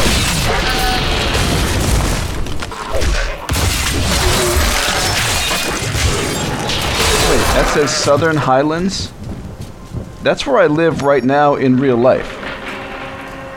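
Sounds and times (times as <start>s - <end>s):
video game explosions with crashing debris and crackle: 0.0s - 9.2s
speech: 7.8s - 9.2s, 10.2s - 12.4s.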